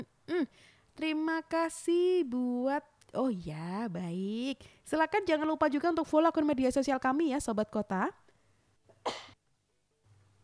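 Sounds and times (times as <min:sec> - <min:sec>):
speech: 0:00.0 - 0:08.2
sharp cough: 0:08.9 - 0:09.4.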